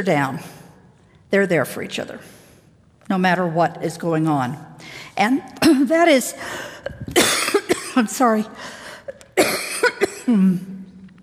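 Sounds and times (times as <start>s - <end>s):
speech: 0.0s - 0.6s, 1.3s - 2.4s, 3.1s - 7.3s, 8.0s - 8.8s, 9.4s - 10.7s
harsh coughing from a tickle in the throat: 6.5s - 8.2s, 8.9s - 10.7s.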